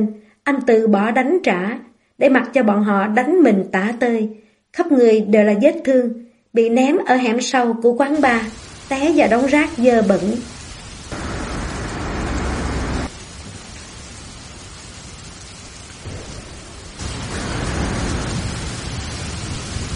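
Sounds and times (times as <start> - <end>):
speech: 0.0 - 10.6
heavy rain: 8.1 - 19.9
rumbling thunder: 11.0 - 19.9.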